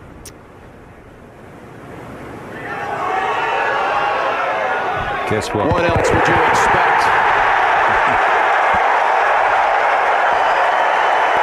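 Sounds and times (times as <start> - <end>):
large golf gallery cheering a birdie putt: 2.5 - 11.4
speech: 5.3 - 7.2.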